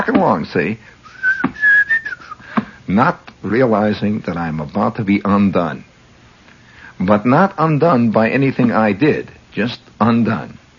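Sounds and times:
speech: 0.0 - 1.0, 2.9 - 5.9, 7.0 - 10.6
breathy whistling through the teeth: 1.0 - 2.6
soft thumps: 1.4 - 1.8.

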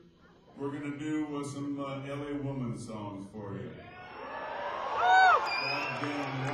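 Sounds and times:
speech: 0.5 - 3.9, 5.0 - 6.5
crowd cheering with a steady roar of voices: 3.8 - 6.5
loud whoop: 3.8 - 6.5.

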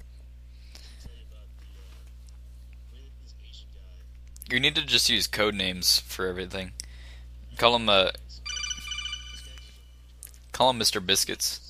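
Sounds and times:
speech: 4.5 - 6.8, 7.6 - 8.3, 10.6 - 11.6
phone text message ringtone with warbling electronic tone: 8.5 - 9.8.

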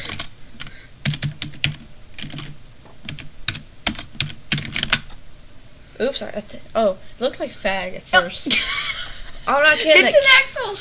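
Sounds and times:
typing on a computer keyboard: 0.0 - 5.1
speech: 6.0 - 8.8, 9.5 - 10.7.

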